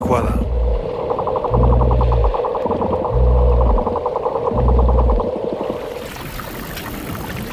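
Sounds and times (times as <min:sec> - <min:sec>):
deep booming low pulses underwater: 0:00.0 - 0:05.4
speech: 0:00.1 - 0:00.5
bottlenose dolphin echolocation clicks underwater: 0:00.9 - 0:05.9.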